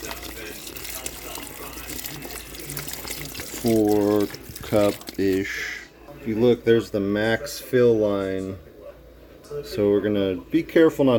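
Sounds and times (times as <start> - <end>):
water pouring from a water bottle into a cooking pot of beans and ham hock: 0.0 - 5.7
speech: 3.6 - 8.7, 9.5 - 11.1.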